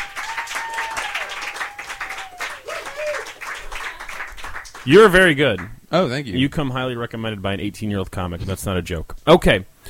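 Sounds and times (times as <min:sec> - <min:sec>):
faint whistles and whoops: 0:00.0 - 0:03.4
crowd applauding: 0:00.0 - 0:05.7
speech: 0:04.8 - 0:09.7.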